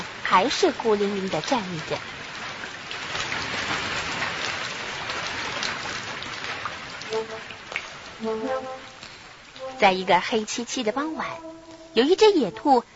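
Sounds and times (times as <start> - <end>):
steady rain pouring: 0.0 - 12.9
speech: 0.3 - 2.2, 8.2 - 8.9, 9.8 - 12.9
faint tonal notes: 7.1 - 12.9.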